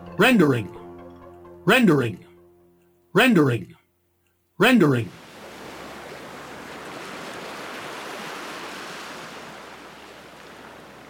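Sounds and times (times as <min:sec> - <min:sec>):
speech: 0:00.2 - 0:00.8, 0:01.6 - 0:02.2, 0:03.1 - 0:03.8, 0:04.6 - 0:05.2
ocean waves washing onto a sandy beach: 0:05.2 - 0:11.0.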